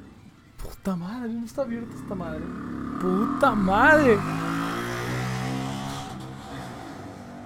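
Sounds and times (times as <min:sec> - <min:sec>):
speech: 0:00.8 - 0:04.4
motorcycle engine roaring past: 0:01.6 - 0:07.4.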